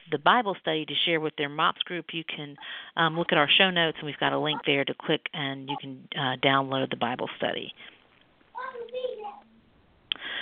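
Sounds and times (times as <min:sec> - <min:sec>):
speech: 0:00.1 - 0:08.0
child chattering in a high-pitched voice: 0:04.4 - 0:04.8, 0:05.7 - 0:05.9, 0:08.6 - 0:09.6.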